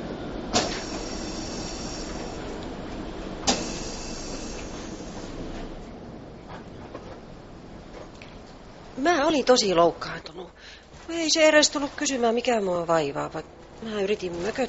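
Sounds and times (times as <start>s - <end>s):
arriving metro train rumbling: 0.0s - 14.6s
sharp metallic clunks: 0.5s - 2.4s, 3.4s - 5.3s
speech: 9.0s - 14.6s.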